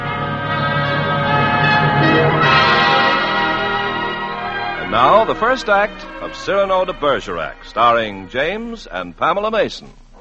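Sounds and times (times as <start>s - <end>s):
contest bell ringing with a bright silvery tone: 0.0s - 6.4s
speech: 5.0s - 10.1s.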